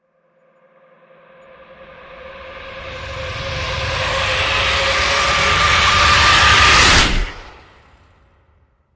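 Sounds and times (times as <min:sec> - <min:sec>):
hit swell: 0:02.1 - 0:08.5.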